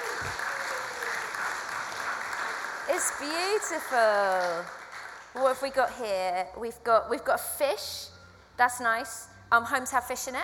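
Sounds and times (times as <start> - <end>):
audience applause: 0.0 - 5.4
speech: 2.9 - 10.4.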